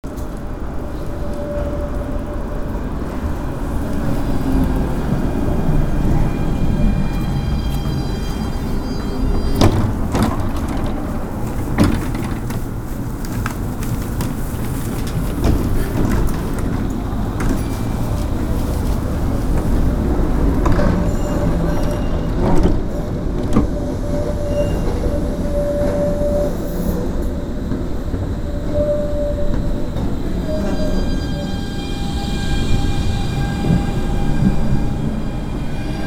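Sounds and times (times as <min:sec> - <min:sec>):
tram: 0:00.0 - 0:36.0.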